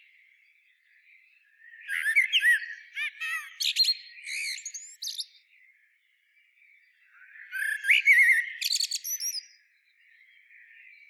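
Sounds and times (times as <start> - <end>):
Eurasian blackbird Turdus merula singing: 1.8 - 5.5, 7.4 - 9.6.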